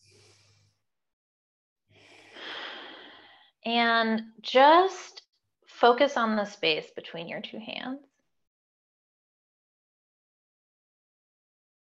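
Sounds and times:
breath in during a guided exercise: 2.0s - 3.5s
speech: 3.6s - 5.1s, 5.8s - 8.1s.

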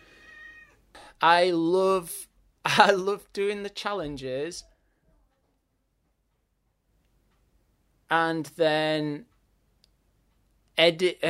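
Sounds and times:
cat meowing: 0.2s - 0.8s
speech: 1.2s - 4.7s, 8.1s - 9.3s, 10.8s - 11.2s.

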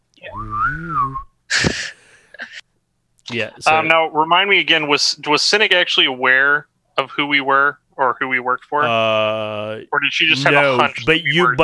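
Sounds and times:
person whistling imitating a bird singing: 0.3s - 1.3s
speech: 3.3s - 11.6s.

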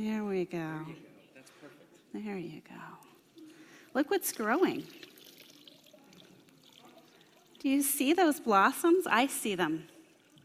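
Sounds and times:
speech: 0.0s - 3.1s, 3.9s - 5.1s, 7.6s - 9.9s
water pouring onto seeds: 3.0s - 8.3s.

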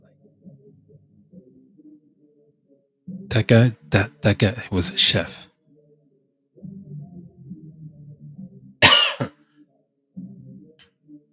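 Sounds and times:
speech: 3.3s - 5.5s
sharp loud cough: 8.8s - 9.4s.

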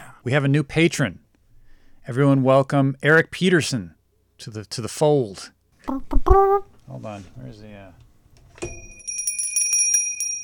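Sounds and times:
speech: 0.2s - 1.2s, 2.0s - 8.0s, 8.6s - 8.9s
small bell struck with a high metallic tone: 8.6s - 10.4s.

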